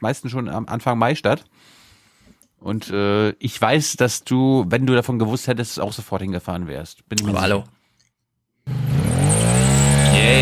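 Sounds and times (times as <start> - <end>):
speech: 0.0 - 1.8, 2.6 - 7.8
motorcycle engine revving at a motorcycle meeting in Malchin Mecklenburg: 8.7 - 10.3.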